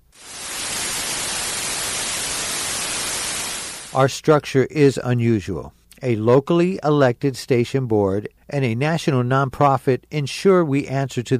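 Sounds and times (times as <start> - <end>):
loud steady radio static across the full band: 0.0 - 4.0
speech: 3.9 - 11.3.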